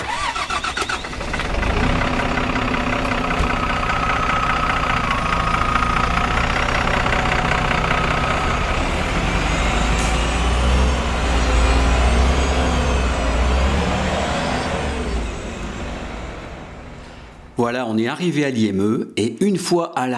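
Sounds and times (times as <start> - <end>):
large bus engine starting up and running: 0.0 - 17.6
speech: 17.7 - 20.1.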